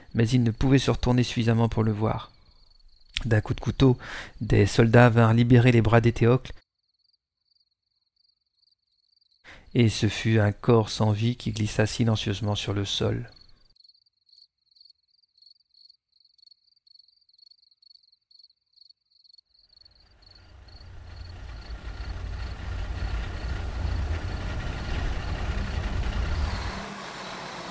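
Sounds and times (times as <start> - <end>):
speech: 0.2 - 2.4, 3.2 - 6.6, 9.7 - 13.4
crickets chirping at night: 2.1 - 4.2, 6.8 - 9.6, 13.3 - 27.6
truck engine rumbling and idling while parking: 20.0 - 27.6.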